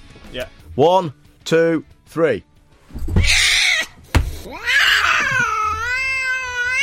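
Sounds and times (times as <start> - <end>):
speech: 0.3 - 3.2
cat screeching as a person falls onto it: 3.0 - 6.8.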